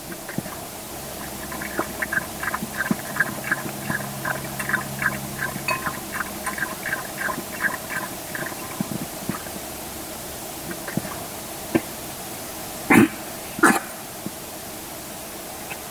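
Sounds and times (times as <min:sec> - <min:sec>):
dog choking while drinking water: 0:00.0 - 0:09.6, 0:10.6 - 0:12.0, 0:12.9 - 0:14.0.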